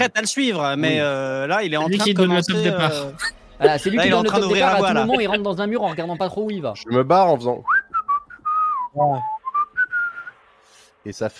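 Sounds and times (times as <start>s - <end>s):
speech: 0.0s - 7.8s, 9.0s - 9.3s, 11.0s - 11.3s
laughter: 1.8s - 7.1s
person whistling a tune: 7.6s - 10.4s.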